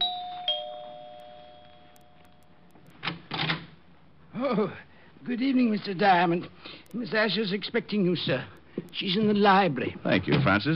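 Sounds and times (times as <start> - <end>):
apartment doorbell chiming: 0.0 - 2.5
speech: 4.4 - 10.7.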